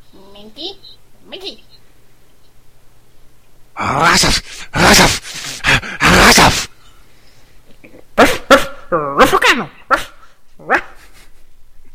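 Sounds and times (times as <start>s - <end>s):
speech: 0.4s - 1.8s, 3.8s - 5.0s
person imitating a dog with loud raspy barks: 3.8s - 6.7s, 8.0s - 11.0s.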